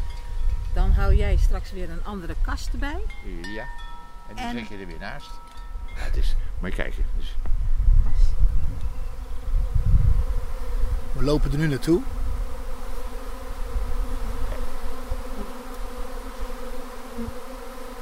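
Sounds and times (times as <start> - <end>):
individual honeybees buzzing around: 0.0 - 6.1, 7.8 - 17.9
speech: 1.0 - 8.3, 11.2 - 12.2
dense swarm of honeybees humming, settling on a post and tree trunk: 7.8 - 17.9.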